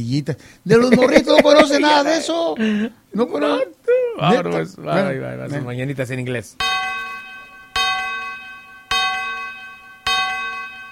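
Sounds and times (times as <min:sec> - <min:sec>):
speech: 0:00.0 - 0:06.8
laughter: 0:00.7 - 0:02.9
resonant bell chimes: 0:06.6 - 0:10.9.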